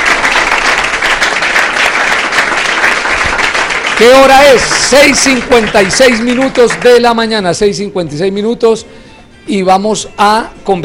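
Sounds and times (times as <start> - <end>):
audience applause: 0.0 - 7.3
speech: 4.0 - 10.8.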